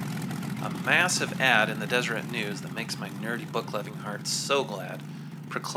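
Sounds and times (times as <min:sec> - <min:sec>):
car engine starting and revving: 0:00.2 - 0:05.7
speech: 0:00.9 - 0:05.7.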